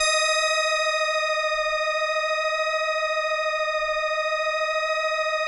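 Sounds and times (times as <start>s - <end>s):
indie organ note D sharp one: 0.0s - 5.3s.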